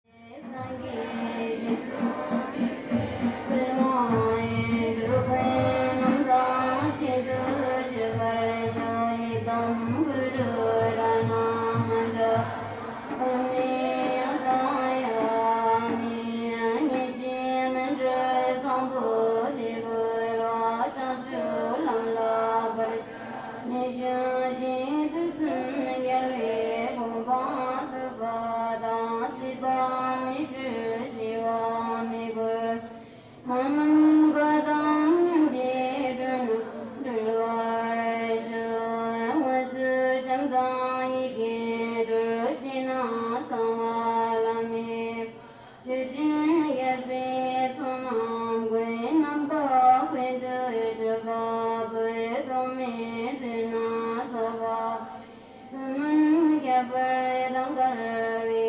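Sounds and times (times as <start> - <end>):
puja ritual in Leh: 0.0 - 58.6.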